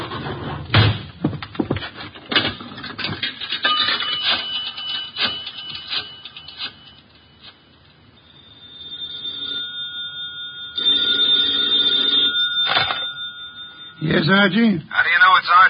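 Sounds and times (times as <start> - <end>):
knocks and clatters: 0.0 - 6.8
telephone bell ringing: 3.6 - 15.6
speech: 14.2 - 15.6.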